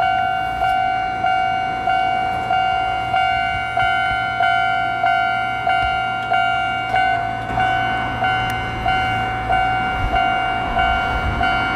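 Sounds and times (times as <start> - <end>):
arriving train rumbling: 0.0 - 11.7
loud ringing warning tone: 0.0 - 11.7.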